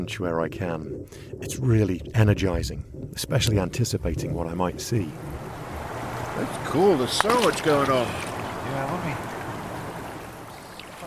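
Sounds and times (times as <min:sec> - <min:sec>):
speech: 0:00.0 - 0:05.4, 0:06.4 - 0:09.3
creek water rushing: 0:05.2 - 0:11.0.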